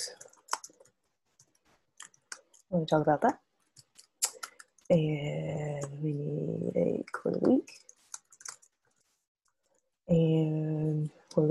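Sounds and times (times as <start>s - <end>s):
speech: 0.0s - 0.3s, 2.7s - 3.4s, 4.9s - 7.8s, 10.1s - 11.5s
keyboard typing: 0.0s - 2.7s, 3.7s - 4.9s, 6.8s - 8.8s.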